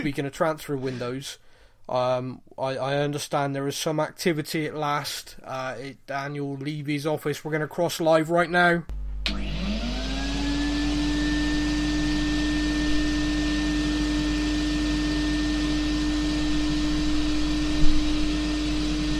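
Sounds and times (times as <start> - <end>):
speech: 0.0 - 9.4
vacuum cleaner running: 9.0 - 19.1.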